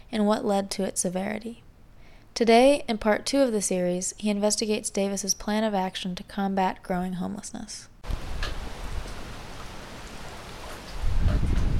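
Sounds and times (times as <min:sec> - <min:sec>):
speech: 0:00.1 - 0:01.6, 0:02.4 - 0:08.2
deep rumble of thunder: 0:08.0 - 0:11.7
steady hissing rain pouring on a stormy night: 0:08.0 - 0:11.7.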